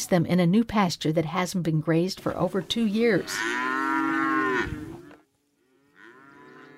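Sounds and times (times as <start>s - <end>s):
speech: 0.0s - 3.8s
lowing from another animal: 2.6s - 6.7s
cow mooing long and loud: 3.0s - 6.7s.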